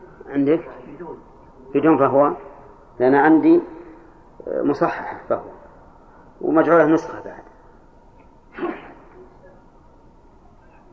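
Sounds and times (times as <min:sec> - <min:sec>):
quiet hum: 0:00.0 - 0:10.9
speech: 0:00.3 - 0:03.8, 0:04.4 - 0:05.6, 0:06.4 - 0:07.5
person sneezing: 0:08.5 - 0:09.2.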